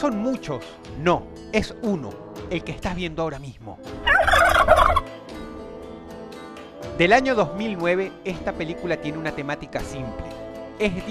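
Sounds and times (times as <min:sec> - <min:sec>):
speech: 0:00.0 - 0:04.2, 0:07.0 - 0:11.1
single turkey gobbling: 0:04.0 - 0:05.1.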